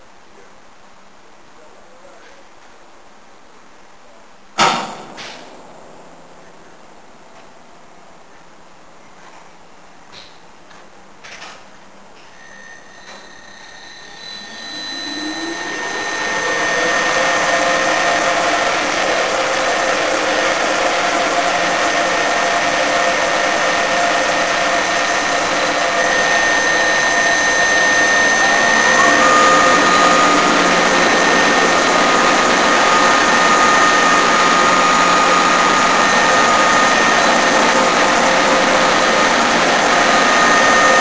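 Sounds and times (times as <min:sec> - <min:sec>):
Siemens ES 64 U2 Taurus electric locomotive 1116 powering up: 0:12.3 - 0:41.0.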